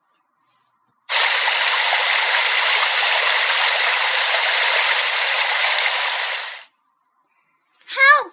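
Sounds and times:
rushing river water: 0:01.1 - 0:06.7.

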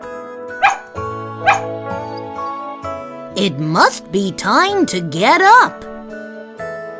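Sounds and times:
dog barking: 0:00.6 - 0:02.2
speech: 0:03.4 - 0:05.9.

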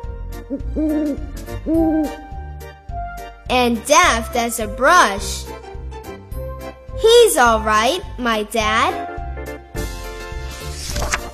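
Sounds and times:
owl hooting: 0:00.5 - 0:02.3
speech: 0:00.5 - 0:02.3, 0:03.5 - 0:05.8, 0:07.0 - 0:09.1.

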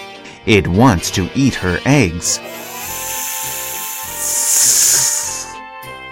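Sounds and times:
continuous music: 0:00.0 - 0:06.1
speech: 0:00.4 - 0:02.7
snake hissing in a platypus tunnel: 0:02.4 - 0:05.6.

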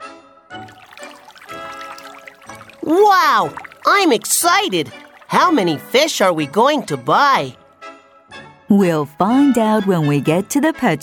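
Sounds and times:
water pouring into a fish tank: 0:00.6 - 0:06.8
speech: 0:02.8 - 0:07.6, 0:08.7 - 0:11.0.

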